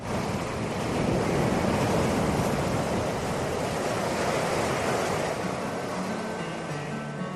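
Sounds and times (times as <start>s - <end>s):
sea waves washing onto a beach: 0.0s - 7.0s.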